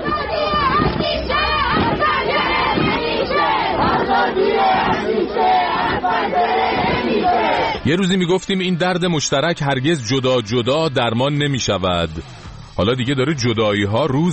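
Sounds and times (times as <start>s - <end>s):
large crowd chanting a protest slogan in unison: 0.0s - 8.0s
speech: 7.8s - 14.3s.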